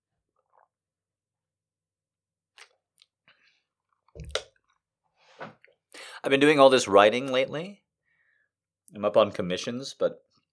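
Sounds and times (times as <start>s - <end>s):
person swallowing water: 4.2s - 4.4s
person sipping water: 4.2s - 4.5s
speech: 6.2s - 7.8s, 8.9s - 10.3s.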